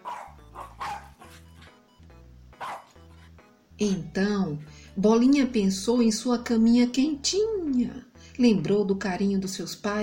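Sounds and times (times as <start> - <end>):
dog barking with a whimpering, yipping quality: 0.0 - 1.8, 2.6 - 3.2
low musical hum: 0.0 - 10.0
speech: 3.8 - 10.0.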